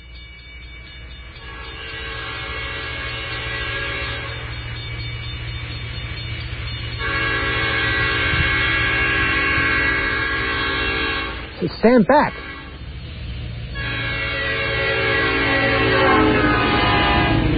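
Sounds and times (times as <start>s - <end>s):
train rumbling: 0.0s - 17.5s
train horn blaring in long blasts: 1.4s - 5.0s, 6.9s - 11.6s, 12.2s - 13.1s, 13.7s - 17.5s
speech: 11.8s - 12.5s.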